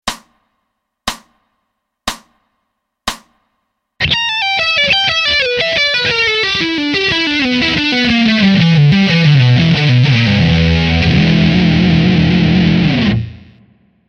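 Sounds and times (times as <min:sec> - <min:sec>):
slow blues rock in pentatonic: 0:04.0 - 0:13.6.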